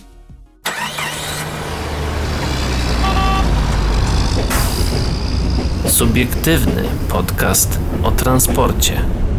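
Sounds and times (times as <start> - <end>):
engine cranking and starting: 0.6 - 6.2
steady loud motor rumble: 0.6 - 6.4
brief pair of beeps: 3.0 - 3.5
speech: 6.0 - 9.2.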